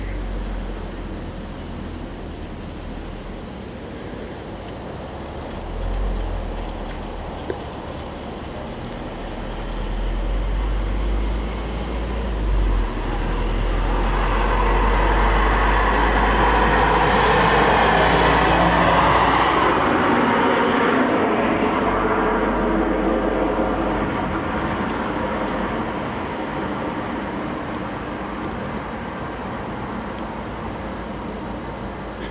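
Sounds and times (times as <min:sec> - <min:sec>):
car passing: 0:00.0 - 0:32.2
crickets chirping at night: 0:00.0 - 0:32.2
road traffic rumbling: 0:00.0 - 0:32.2.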